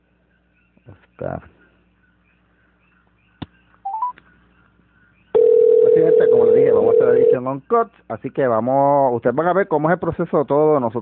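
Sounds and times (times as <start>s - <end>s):
speech: 0.8s - 1.6s, 7.4s - 11.0s
telephone keypad tones dialing a number: 3.9s - 4.1s, 5.4s - 7.4s.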